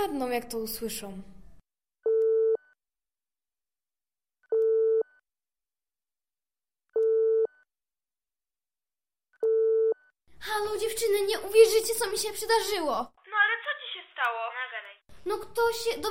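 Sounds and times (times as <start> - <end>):
speech: 0.0 - 1.4, 10.4 - 16.0
telephone line tone while placing a call: 4.5 - 5.2, 7.0 - 7.6, 9.4 - 10.0.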